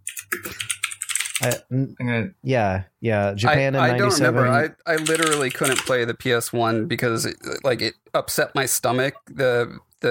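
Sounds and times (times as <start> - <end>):
typing on a computer keyboard: 0.0 - 1.6, 4.9 - 6.0
speech: 1.4 - 10.0.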